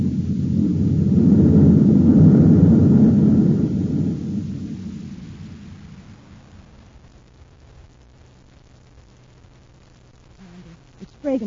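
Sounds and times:
spaceship forward rockets firing: 0:00.0 - 0:07.8.

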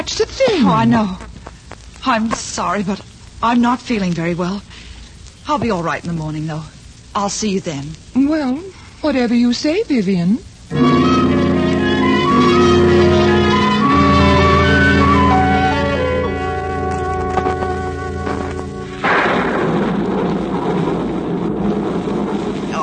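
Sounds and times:
speech: 0:00.0 - 0:01.3, 0:02.0 - 0:04.8, 0:05.5 - 0:11.1
steady rushing rain: 0:00.0 - 0:22.8
dramatic orchestral music: 0:10.7 - 0:19.2
loud rolling thunder: 0:10.7 - 0:22.8.

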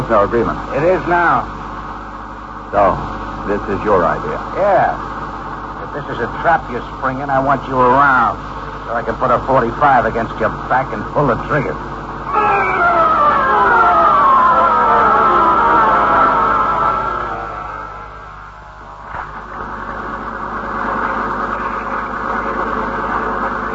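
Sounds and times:
speech: 0:00.1 - 0:01.6, 0:02.7 - 0:05.1, 0:06.0 - 0:12.5
boat motor running: 0:12.2 - 0:23.7.

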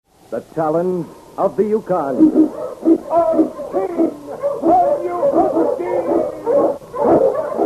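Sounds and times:
speech: 0:00.3 - 0:06.7
Eskimo sled dogs howling in a storm in the Yukon: 0:02.1 - 0:07.6.

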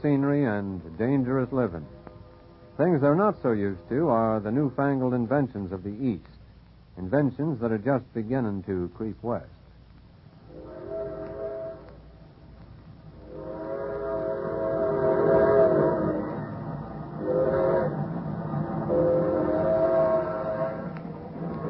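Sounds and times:
speech: 0:00.0 - 0:02.1, 0:02.8 - 0:06.3, 0:07.0 - 0:09.6
train rumbling past: 0:00.0 - 0:06.2, 0:10.4 - 0:21.6
train horn blasts: 0:10.5 - 0:12.0, 0:13.2 - 0:21.6.

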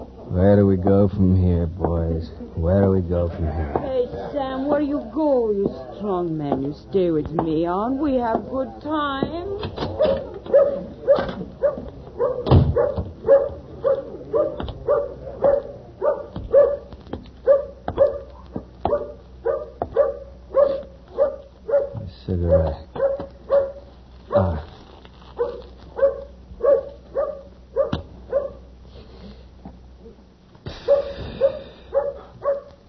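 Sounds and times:
speech: 0:00.4 - 0:10.3
dog barking, yipping and whimpering: 0:09.9 - 0:24.6, 0:25.4 - 0:28.7, 0:30.8 - 0:32.8.

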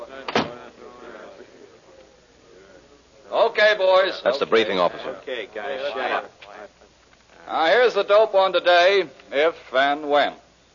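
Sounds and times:
murmur of voices: 0:00.0 - 0:09.6
room noise: 0:00.0 - 0:10.7
door shutting: 0:00.3 - 0:00.6
speech: 0:03.3 - 0:06.4, 0:07.5 - 0:10.4.

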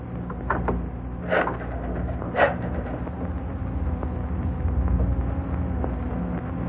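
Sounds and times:
low steady room hum: 0:00.0 - 0:06.6
door latch and hinge clicking and creaking as door opens: 0:00.2 - 0:03.2.

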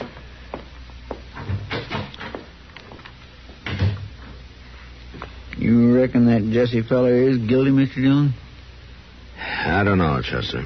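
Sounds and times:
door shutting with a thud: 0:01.4 - 0:02.4, 0:03.6 - 0:04.2
speech: 0:05.7 - 0:08.4, 0:09.6 - 0:10.6.

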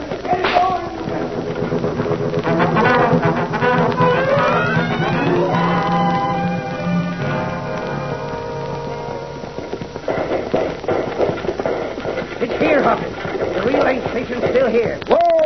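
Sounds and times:
ridden horses galloping with hooves clip-clopping: 0:00.0 - 0:15.4.

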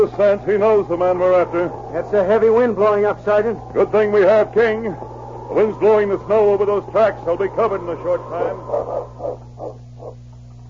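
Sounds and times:
speech: 0:00.0 - 0:10.2
steady low hum: 0:00.0 - 0:10.6
dog barking: 0:08.6 - 0:10.2.

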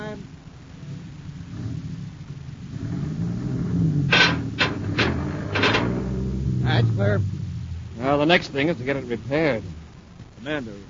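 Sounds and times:
heavy truck engine rumbling: 0:00.0 - 0:10.8
metal beam dragged loose with harsh scraping and grinding: 0:03.2 - 0:07.2
speech: 0:08.2 - 0:09.8, 0:10.4 - 0:10.8.

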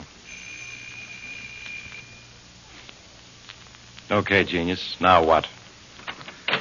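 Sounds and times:
hiss: 0:00.0 - 0:06.6
apartment doorbell buzzing: 0:00.2 - 0:02.4
speech: 0:04.1 - 0:05.6.

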